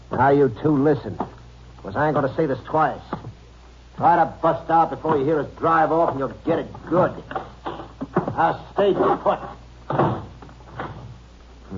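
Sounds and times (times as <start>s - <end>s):
low hiss: 0.0s - 11.7s
speech: 0.2s - 3.2s, 4.0s - 7.5s, 8.4s - 10.2s
door being shut and locked: 9.9s - 11.1s.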